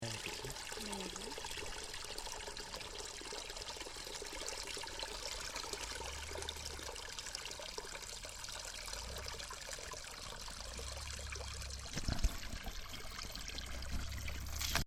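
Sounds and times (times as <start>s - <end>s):
spring water flowing: 0.0s - 14.8s.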